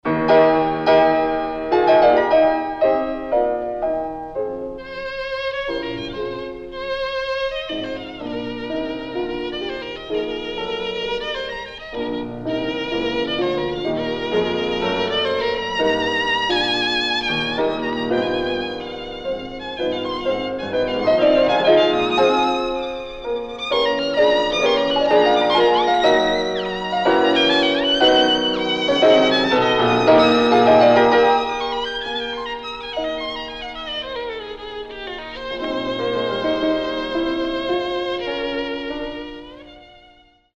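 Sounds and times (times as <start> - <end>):
piano: 0.0 - 40.5
violin: 0.0 - 40.5.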